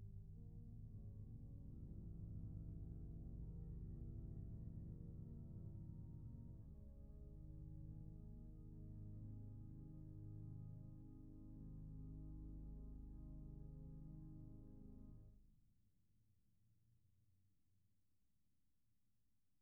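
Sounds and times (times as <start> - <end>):
organ: 0.2 - 15.3.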